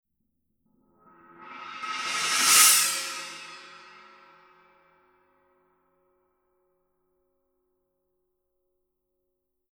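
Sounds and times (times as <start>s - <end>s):
Color Sound 900 black china cymbal: 1.2s - 4.7s.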